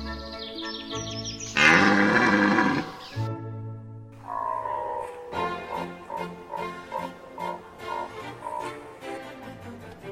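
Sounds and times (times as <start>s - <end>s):
red deer stags bellowing during the rut: 1.6s - 3.2s, 4.2s - 9.0s.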